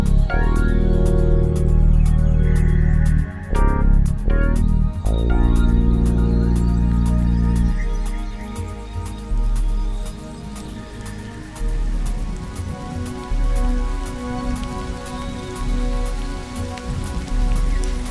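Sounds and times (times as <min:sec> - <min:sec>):
steady rain pattering on a hard surface: 0:00.0 - 0:18.1.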